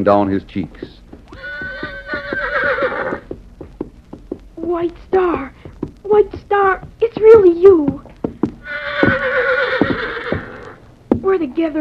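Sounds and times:
speech: 0:00.0 - 0:01.5, 0:04.7 - 0:08.0, 0:11.3 - 0:11.7
horse hoofbeats clopping: 0:00.0 - 0:11.7
horse whinnying: 0:01.3 - 0:03.2, 0:08.6 - 0:10.8.

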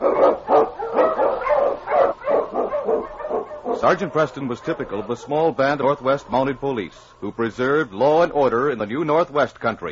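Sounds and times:
husky sled dog barking: 0:00.0 - 0:05.0
speech: 0:03.8 - 0:09.8.

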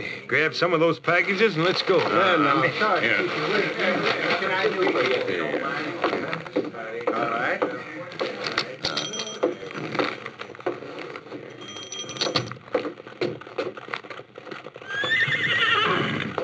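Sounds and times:
speech: 0:00.0 - 0:06.4
horses' hooves clip-clopping: 0:01.2 - 0:16.4
horse whinnying: 0:14.8 - 0:16.4.

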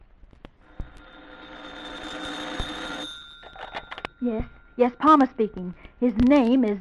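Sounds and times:
telephone electric bell ringing: 0:00.6 - 0:05.8
speech: 0:04.2 - 0:06.7.

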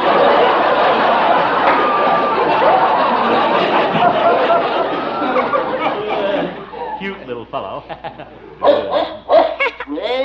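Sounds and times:
laughter: 0:00.0 - 0:10.1
speech: 0:07.4 - 0:09.2
dog yapping at a circus, scared by a cow: 0:08.6 - 0:09.7.

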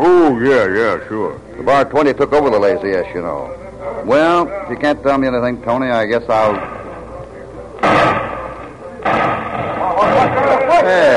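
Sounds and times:
speech: 0:00.0 - 0:06.8
gunshots in a town: 0:07.8 - 0:11.1.

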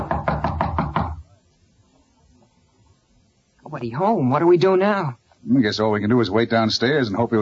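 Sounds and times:
firm knocks on the door of a room at the end of a hall: 0:00.0 - 0:01.3
speech: 0:03.7 - 0:07.4.

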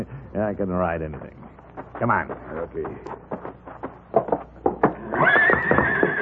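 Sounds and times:
speech: 0:00.4 - 0:03.6
stallion kicking in a barn stall: 0:01.5 - 0:06.2
stallion whinnying loudly: 0:04.9 - 0:06.2.

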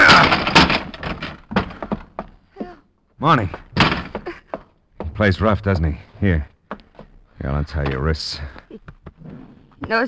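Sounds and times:
locked door being forced open: 0:00.0 - 0:02.1, 0:03.7 - 0:04.3
speech: 0:03.2 - 0:03.8, 0:05.2 - 0:06.5, 0:07.4 - 0:10.0.

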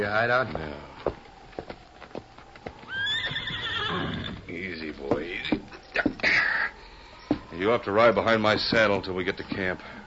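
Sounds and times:
speech: 0:00.0 - 0:00.9, 0:03.9 - 0:05.6, 0:07.6 - 0:10.0
horse hooves clopping in the hills: 0:00.0 - 0:09.8
horse whinnying: 0:02.8 - 0:04.5.

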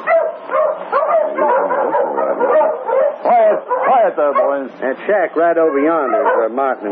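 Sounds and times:
pack of sled dogs barking and yipping: 0:00.0 - 0:06.8
speech: 0:04.1 - 0:06.8.

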